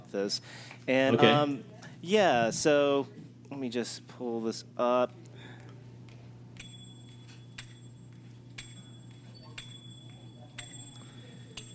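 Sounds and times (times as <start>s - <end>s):
speech: 0.1s - 5.3s
fifth graders percussion ensemble playing bright ringing metallic strikes: 8.6s - 9.0s, 9.6s - 11.0s.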